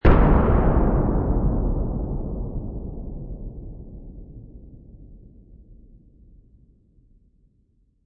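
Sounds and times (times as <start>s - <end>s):
moderately distant large dynamite explosion partly muffled: 0.0s - 5.9s.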